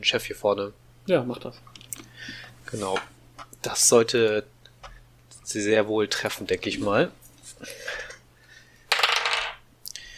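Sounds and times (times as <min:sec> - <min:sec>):
speech: 0:00.0 - 0:04.5, 0:05.5 - 0:08.0
dice rolling across a hard tabletop: 0:08.9 - 0:09.6.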